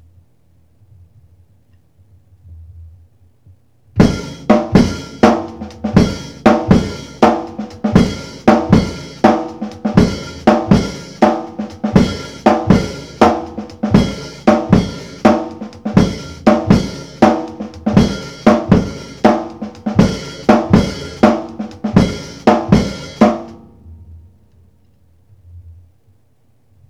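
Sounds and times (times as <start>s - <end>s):
acoustic beat: 4.0s - 23.8s.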